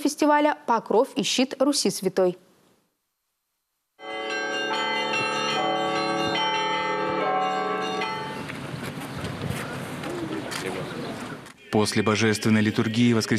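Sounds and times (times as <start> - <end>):
speech: 0.0 - 2.5, 11.7 - 13.3
church bells ringing a peal at a bell-ringing festival: 4.0 - 8.6
wind outdoors: 4.2 - 13.3.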